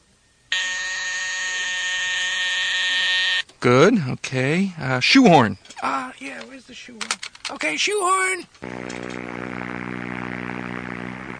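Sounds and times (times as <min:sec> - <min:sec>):
joy buzzer buzzing: 0:00.5 - 0:03.5, 0:08.6 - 0:11.3
speech: 0:03.6 - 0:09.4.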